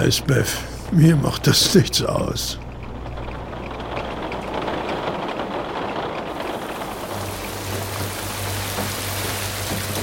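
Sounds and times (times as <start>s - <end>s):
speech: 0.0s - 2.6s
heavy rain pouring down on a town: 0.0s - 10.0s
low rumbling hum: 0.0s - 10.0s.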